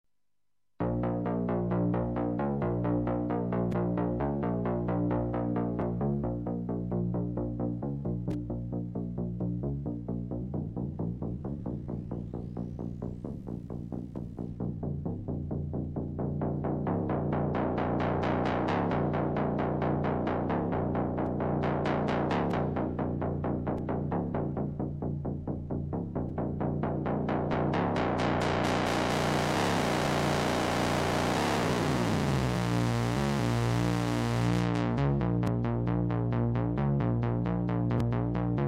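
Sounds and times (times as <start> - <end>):
synthesizer: 0.8 - 38.6.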